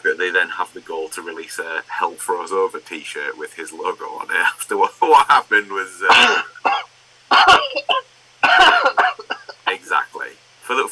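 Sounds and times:
speech: 0.2s - 6.5s
man giving exaggerated staged coughs: 6.0s - 7.7s, 8.4s - 9.7s.

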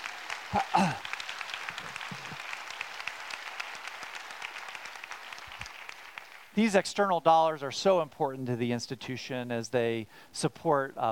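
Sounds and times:
room full of people applauding: 0.0s - 6.6s
speech: 0.5s - 1.1s, 6.6s - 11.1s
person cheering or calling out: 0.6s - 1.0s.

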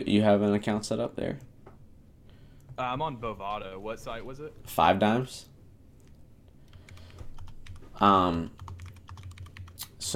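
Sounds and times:
speech: 0.0s - 1.5s, 2.8s - 5.5s, 8.0s - 8.6s
typing on a computer keyboard: 6.7s - 7.9s, 8.5s - 9.9s.

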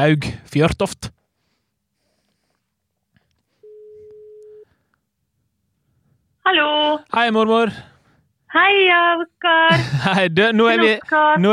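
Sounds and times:
speech: 0.0s - 1.2s, 6.5s - 7.9s, 8.5s - 11.5s
telephone ringing tone while calling: 3.6s - 4.7s
laughter: 9.7s - 11.1s.

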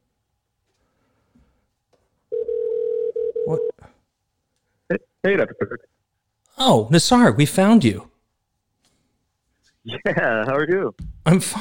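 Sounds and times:
electronic ringing tone of an outgoing phone call: 2.3s - 3.8s
speech: 4.9s - 5.9s, 6.6s - 8.1s, 9.8s - 11.5s.

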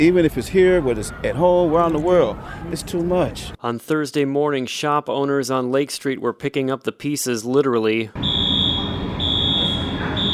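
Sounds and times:
outdoor noise: 0.0s - 3.6s, 8.2s - 10.3s
speech: 0.0s - 8.3s
shrill electronic store burglar alarm ringing: 8.2s - 10.3s.

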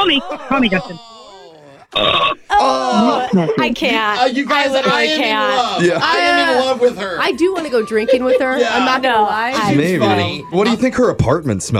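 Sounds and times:
speech: 0.0s - 1.1s, 2.0s - 11.7s
laughter: 0.0s - 10.4s
loud guttural throaty burp: 0.8s - 3.2s.

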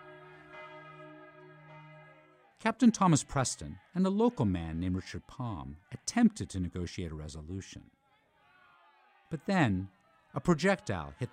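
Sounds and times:
church bells ringing over a town: 0.0s - 3.4s
speech: 2.6s - 8.0s, 9.3s - 11.3s.

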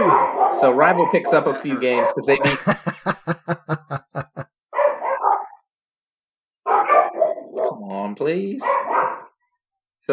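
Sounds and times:
dogs barking: 0.0s - 3.0s, 4.8s - 5.6s, 6.7s - 7.9s, 8.6s - 9.4s
speech: 0.6s - 3.2s
laughter: 1.1s - 4.4s.

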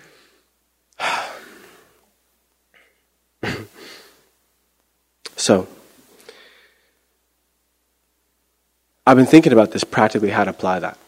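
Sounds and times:
person taking deep breaths: 0.0s - 2.0s, 6.2s - 7.0s
speech: 5.5s - 5.7s, 9.1s - 11.0s.

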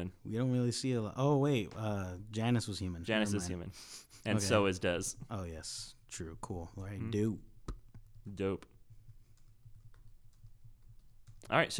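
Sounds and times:
speech: 0.0s - 7.5s, 8.2s - 8.7s, 11.4s - 11.7s
typing on a computer keyboard: 9.0s - 11.5s.

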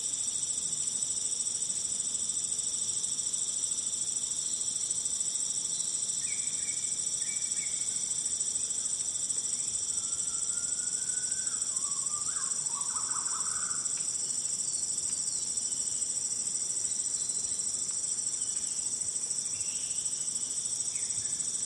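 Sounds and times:
insects shrilling in a Bornean forest: 0.0s - 21.6s.

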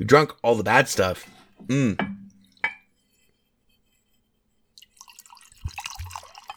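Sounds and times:
speech: 0.0s - 2.1s
glass clink: 2.0s - 3.0s, 4.8s - 6.5s
whiskey glugging from a bottle into a glass: 4.8s - 6.5s.

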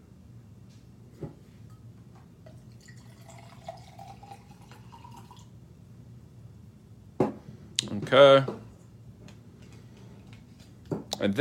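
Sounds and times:
low hum: 0.0s - 11.4s
vinegar pouring into a container: 2.5s - 5.5s
speech: 8.1s - 8.6s, 11.2s - 11.4s.

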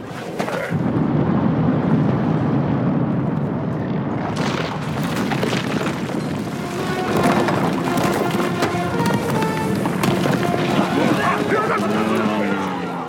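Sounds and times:
crackling rock and fire debris: 0.3s - 13.0s
long loud sci-fi explosion: 0.7s - 6.5s.

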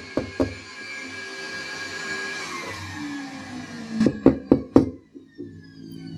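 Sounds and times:
sharp knocks on a door: 0.2s - 0.6s, 4.2s - 5.0s.

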